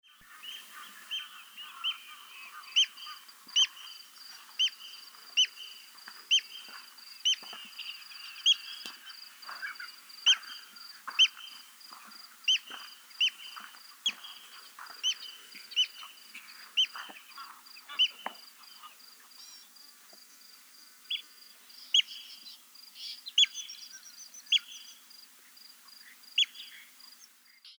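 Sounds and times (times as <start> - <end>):
white-headed lapwing call: 0.2 - 19.7.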